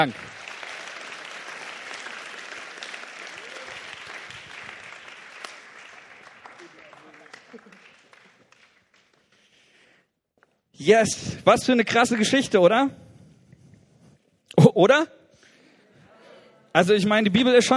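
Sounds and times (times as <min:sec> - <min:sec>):
speech: 0:00.0 - 0:00.4, 0:10.8 - 0:13.0, 0:14.8 - 0:15.2, 0:16.8 - 0:17.7
audience applauding: 0:00.0 - 0:09.8.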